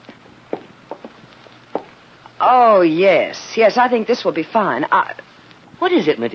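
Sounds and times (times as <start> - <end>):
soft footsteps in a hall: 0.0 - 2.0
speech: 2.4 - 6.3.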